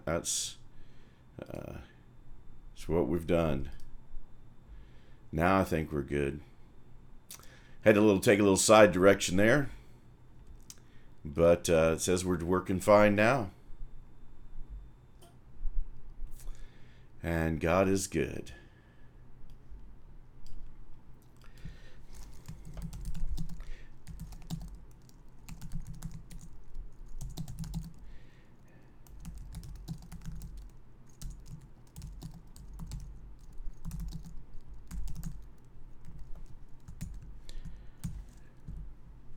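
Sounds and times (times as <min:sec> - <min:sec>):
speech: 0:00.0 - 0:00.6, 0:01.4 - 0:01.9, 0:02.8 - 0:03.8, 0:05.3 - 0:06.5, 0:07.3 - 0:09.8, 0:11.2 - 0:13.6, 0:17.2 - 0:18.6
typing on a computer keyboard: 0:22.2 - 0:28.0, 0:29.0 - 0:38.8.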